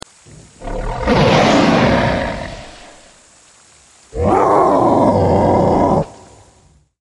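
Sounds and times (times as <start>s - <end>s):
Carnotaurus snarling: 0.3s - 3.2s, 4.2s - 6.2s.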